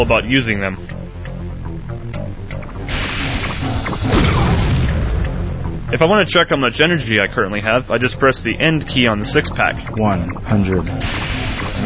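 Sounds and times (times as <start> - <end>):
speech: 0.0 - 1.0, 5.9 - 11.2
video game missile firing boom: 2.9 - 5.6.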